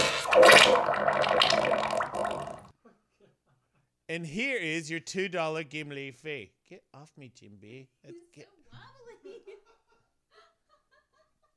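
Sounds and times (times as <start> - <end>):
underwater fart sound effect: 0.0 - 2.7
speech: 4.2 - 8.6.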